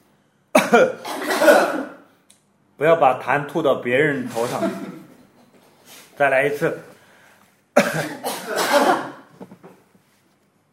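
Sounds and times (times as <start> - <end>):
group of people coughing together on cue: 0.6 - 2.0, 4.3 - 5.2, 7.8 - 9.3
speech: 0.7 - 1.8, 2.8 - 5.0, 6.2 - 6.9, 7.9 - 8.3.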